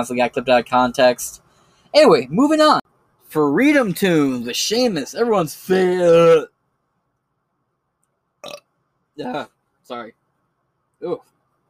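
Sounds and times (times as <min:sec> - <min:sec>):
speech: 0:00.0 - 0:06.5, 0:09.2 - 0:10.2, 0:11.0 - 0:11.3
burp after drinking soda: 0:08.4 - 0:08.7.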